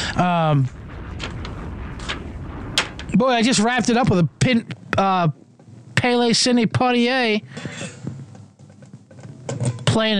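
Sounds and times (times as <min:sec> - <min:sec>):
explosion sound effect fired from a soundboard button: 0:00.0 - 0:05.6
speech: 0:00.2 - 0:00.8, 0:03.2 - 0:05.4, 0:06.0 - 0:08.0, 0:10.0 - 0:10.1.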